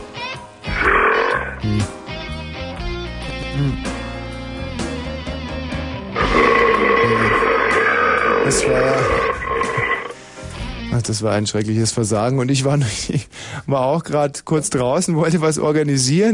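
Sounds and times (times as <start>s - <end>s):
dense steady musical background: 0.0s - 16.3s
croaking drawn-out burps: 0.7s - 1.9s, 6.2s - 10.2s
speech: 1.6s - 2.0s, 3.6s - 3.9s, 8.5s - 9.4s, 11.1s - 16.3s.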